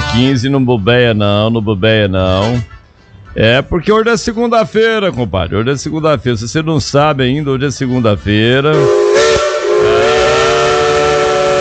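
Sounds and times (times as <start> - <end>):
speech: 0.2 - 2.7, 3.4 - 9.1
steam locomotive whistle: 8.7 - 11.5.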